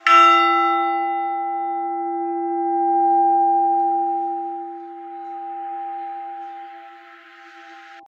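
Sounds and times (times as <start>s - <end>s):
old bells ringing at Lower Beeding: 0.0s - 8.0s.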